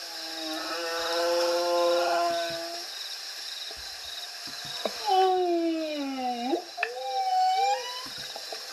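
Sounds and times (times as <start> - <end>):
recorded whale song: 0.1 - 2.9, 5.0 - 8.2.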